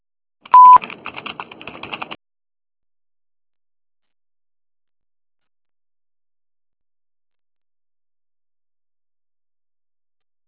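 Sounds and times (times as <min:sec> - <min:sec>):
electronic answering machine beep tone: 0:00.5 - 0:00.8
rapid clicking and tapping: 0:00.6 - 0:02.2.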